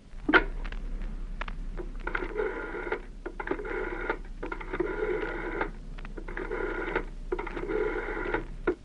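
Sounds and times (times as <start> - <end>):
low steady hum: 0.0 - 8.8
telephone ringing in a home: 2.0 - 8.8.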